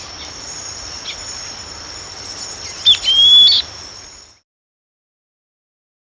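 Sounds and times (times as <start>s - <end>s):
steady high hiss: 0.0s - 4.4s
Southern beardless tyrannulet giving a high thin whistle in Ecuador: 2.8s - 3.7s.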